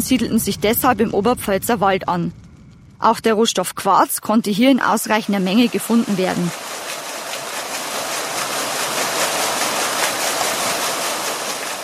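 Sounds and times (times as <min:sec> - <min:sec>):
speech: 0:00.0 - 0:02.4, 0:03.0 - 0:06.8
flowing brook water: 0:05.4 - 0:11.8.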